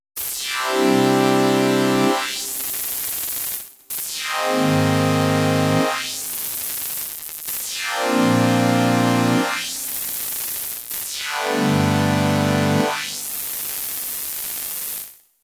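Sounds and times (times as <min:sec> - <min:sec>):
high-pass filtered basic synth: 0:00.6 - 0:02.8, 0:04.3 - 0:06.4, 0:07.8 - 0:10.2, 0:11.2 - 0:13.7.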